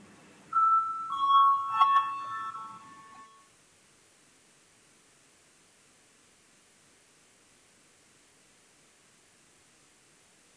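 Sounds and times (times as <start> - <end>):
parliament voting bell electronic ringing tone: 0.6 - 3.5.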